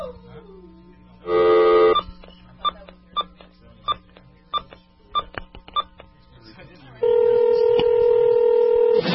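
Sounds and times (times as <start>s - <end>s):
steady held telephone tone: 1.2s - 2.1s, 7.0s - 9.0s.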